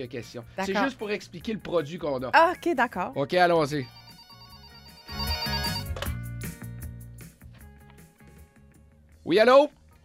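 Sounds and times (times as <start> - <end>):
speech: 0.0 - 4.0, 9.3 - 9.8
telephone ringing with electronic ringtone for an incoming call: 3.8 - 6.2.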